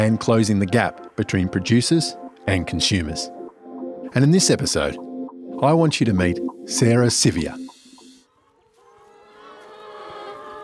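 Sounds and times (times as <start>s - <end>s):
speech: 0.0s - 3.4s, 4.1s - 7.6s
flock of chickens clucking: 7.7s - 10.6s.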